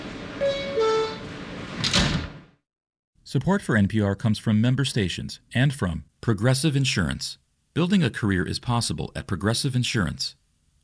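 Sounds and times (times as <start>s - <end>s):
subway train doors sliding shut with a whooshing thud: 0.0s - 2.5s
subway train door two-note descending chime: 0.4s - 1.3s
speech: 3.3s - 10.8s.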